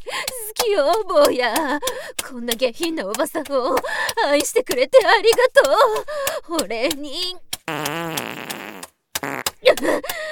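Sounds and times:
speech: 0.7 - 7.8, 9.7 - 10.2
loud buzzy fart with sputtering bursts: 7.7 - 9.6.

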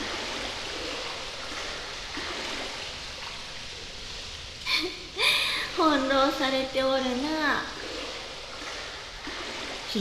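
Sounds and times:
bath water being pushed into waves: 0.0 - 4.3, 7.0 - 10.0
bath water splashes: 0.0 - 10.0
speech: 5.8 - 7.8.

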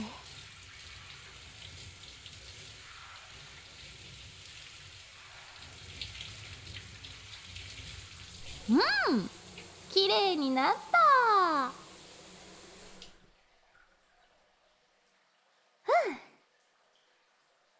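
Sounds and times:
water rinsing off body soap during a wash: 0.0 - 13.2
speech: 8.7 - 9.4, 10.0 - 10.9.

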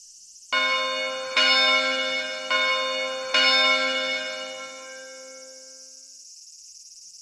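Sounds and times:
large bell struck: 0.6 - 5.9.

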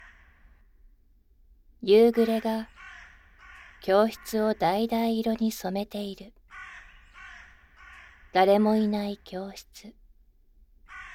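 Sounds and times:
crows cawing at dusk outside an empty school classroom: 0.0 - 0.7, 2.6 - 4.6, 6.5 - 8.4, 10.9 - 11.1
soft voice speaking: 1.8 - 2.7, 3.8 - 6.3, 8.4 - 10.0
speech: 1.8 - 2.7, 3.8 - 6.4, 8.4 - 10.0.

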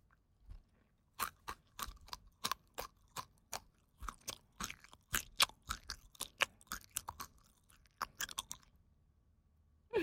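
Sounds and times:
crunching and chewing of crisp food: 0.0 - 8.9
wet mouth sounds: 1.2 - 8.7.

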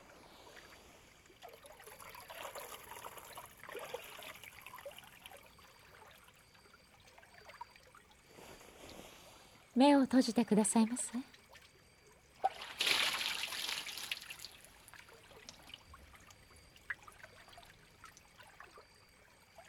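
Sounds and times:
speech: 9.8 - 11.4
water rinsing hair during a hair wash: 12.5 - 15.8.

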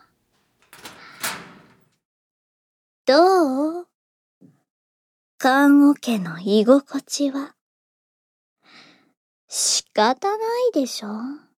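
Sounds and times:
metal locker door being opened: 0.4 - 2.0
speech: 3.1 - 3.9, 5.4 - 7.6, 9.5 - 11.4.

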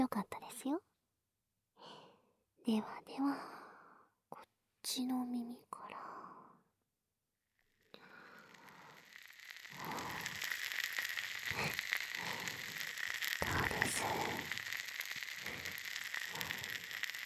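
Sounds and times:
speech: 0.0 - 0.9, 2.6 - 3.6, 4.4 - 6.1
carbonated water bubbles fizzing and crackling near ear: 8.0 - 17.2.

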